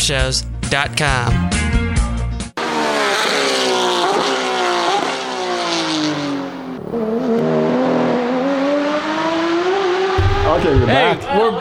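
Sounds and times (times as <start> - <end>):
speech: 0.0 - 1.6, 10.5 - 11.5
race car engines screaming past through gear changes: 2.6 - 11.5.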